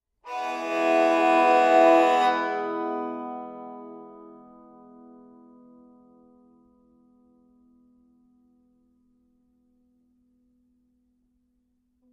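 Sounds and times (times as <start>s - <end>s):
bowed banjo: 0.3s - 5.1s.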